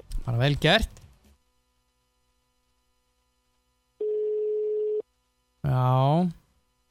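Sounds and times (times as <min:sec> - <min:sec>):
speech: 0:00.4 - 0:01.0, 0:05.7 - 0:06.4
telephone ringback tone after dialing a number: 0:04.0 - 0:05.0.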